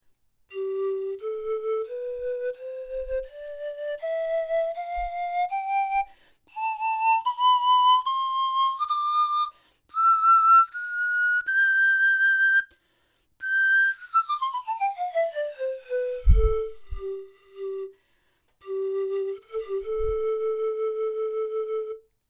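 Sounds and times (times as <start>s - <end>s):
large pan flute: 0.5s - 12.8s, 13.4s - 18.0s, 18.6s - 22.1s.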